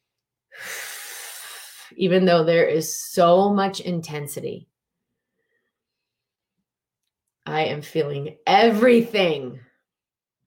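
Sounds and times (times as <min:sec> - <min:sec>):
long airy breath close to the microphone: 0:00.5 - 0:01.9
speech: 0:01.9 - 0:04.7, 0:07.5 - 0:09.7.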